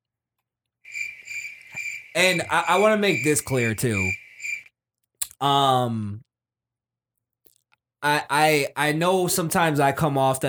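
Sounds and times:
crickets chirping: 0:00.9 - 0:04.7
speech: 0:02.2 - 0:04.2, 0:05.4 - 0:06.2, 0:08.0 - 0:10.4.

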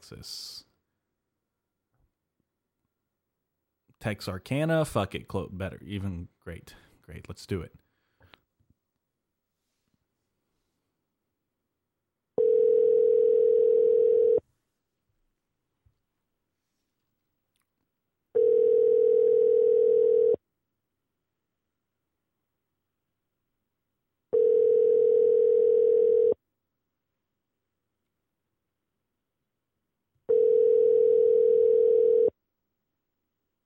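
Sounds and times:
speech: 0:00.1 - 0:00.7, 0:04.0 - 0:07.8
telephone ringback tone on an outgoing call: 0:12.4 - 0:14.4, 0:18.4 - 0:20.4, 0:24.4 - 0:26.4, 0:30.3 - 0:32.3.

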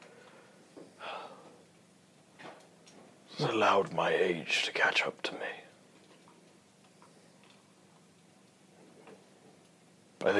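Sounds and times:
exhausted man breathing heavily: 0:00.0 - 0:01.6
speech: 0:03.4 - 0:05.6.

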